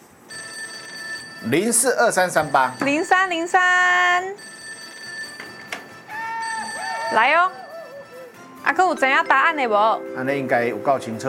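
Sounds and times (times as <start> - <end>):
phone ringback tone on an outgoing call: 0.3 - 3.5, 4.3 - 8.5
speech: 1.4 - 4.5, 7.1 - 7.6, 8.6 - 11.2.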